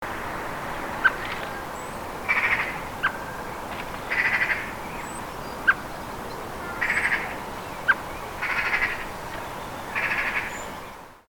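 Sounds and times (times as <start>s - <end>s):
blackbird: 1.0s - 11.0s.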